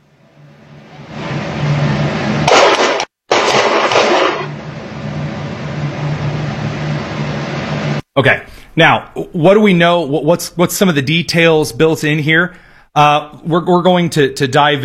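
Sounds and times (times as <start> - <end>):
steady low hum: 0.0 - 8.0
distorted gunshots on surveillance video: 2.4 - 4.5
speech: 8.2 - 14.8.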